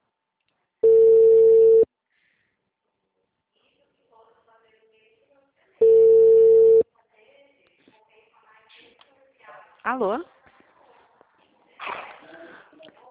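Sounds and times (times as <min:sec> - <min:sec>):
ringback tone of an outgoing telephone call: 0:00.8 - 0:01.9, 0:05.8 - 0:06.8
speech: 0:09.8 - 0:10.3.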